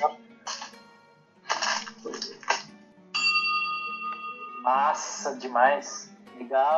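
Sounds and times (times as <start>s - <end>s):
small bell ringing: 3.2s - 5.2s
speech: 4.7s - 6.7s.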